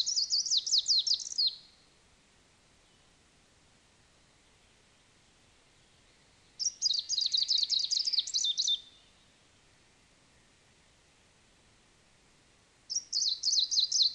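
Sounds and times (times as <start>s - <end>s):
Greenish Warbler song, subspecies viridanus: 0.0s - 2.0s, 2.7s - 3.3s, 4.1s - 10.6s, 12.9s - 14.1s.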